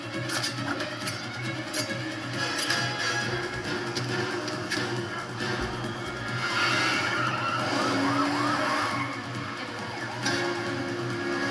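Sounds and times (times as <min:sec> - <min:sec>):
car engines roaring in a movie car chase: 0:00.0 - 0:11.4
tires skidding in a movie car chase: 0:02.2 - 0:11.4
police siren wailing: 0:03.1 - 0:11.4.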